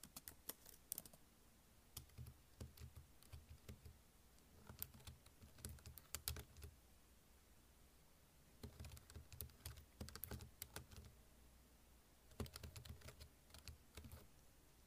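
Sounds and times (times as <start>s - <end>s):
typing on a keyboard: 0.0s - 1.2s, 2.0s - 3.9s, 4.6s - 6.7s, 8.6s - 11.1s, 12.3s - 14.3s
faint steady hiss: 0.0s - 14.8s.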